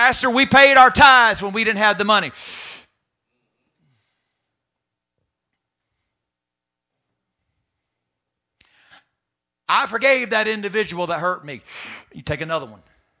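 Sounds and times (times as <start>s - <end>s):
speech: 0.1s - 2.7s, 9.7s - 12.9s
sharp quick breaths drawn in through the nose and mouth: 2.4s - 4.7s, 7.4s - 9.2s, 11.7s - 12.1s.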